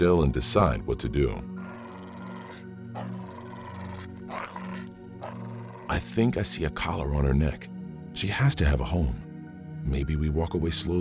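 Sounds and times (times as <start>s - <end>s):
speech: 0.0s - 1.5s, 5.9s - 9.2s, 9.8s - 10.9s
dog growling low: 1.6s - 6.2s.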